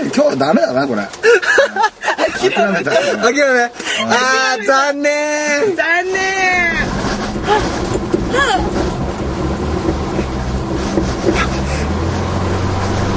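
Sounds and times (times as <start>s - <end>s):
speech: 0.1s - 6.8s, 7.5s - 8.8s
people laughing and exclaiming: 1.2s - 6.7s
truck engine starting and idling low: 6.2s - 13.1s.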